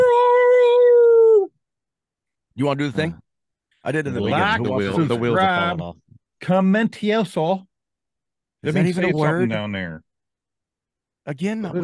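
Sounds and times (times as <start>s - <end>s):
person howling like a dog: 0.0s - 1.6s
speech: 2.6s - 3.2s, 3.8s - 7.7s, 8.6s - 10.1s, 11.2s - 11.8s.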